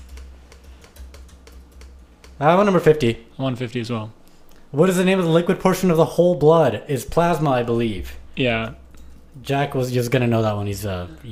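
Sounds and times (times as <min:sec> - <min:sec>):
rapid clicking on a computer keyboard: 0:00.0 - 0:02.9
low hum: 0:00.0 - 0:11.3
speech: 0:02.4 - 0:08.8, 0:09.4 - 0:11.3.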